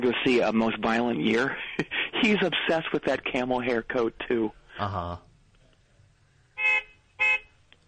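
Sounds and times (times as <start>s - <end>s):
speech: 0.0s - 5.3s
car horn honks: 6.6s - 7.6s.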